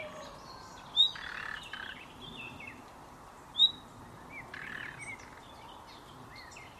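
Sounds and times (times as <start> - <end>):
common nightingale two sharp high whistled notes: 0.0 - 2.8, 3.5 - 5.8
other birds chirping: 0.0 - 6.7.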